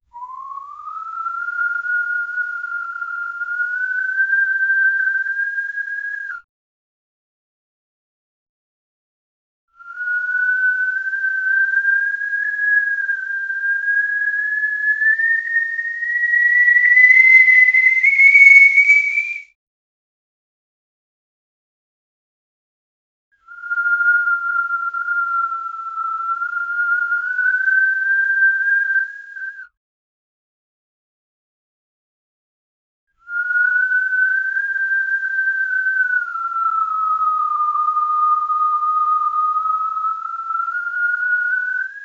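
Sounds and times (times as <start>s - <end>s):
dramatic pitched whistling: 0.2s - 6.4s, 9.8s - 19.6s, 23.5s - 29.7s, 33.3s - 42.0s.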